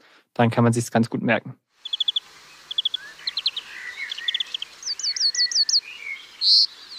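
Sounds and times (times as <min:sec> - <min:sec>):
speech: 0:00.4 - 0:01.7
European Greenfinch song with trilled chirps and buzzy twitters: 0:01.8 - 0:06.9
blackbird in background: 0:01.8 - 0:06.9.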